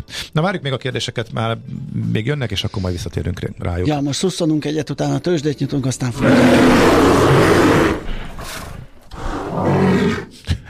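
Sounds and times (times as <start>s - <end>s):
speech: 0.0s - 8.1s
bear roaring: 6.1s - 10.3s.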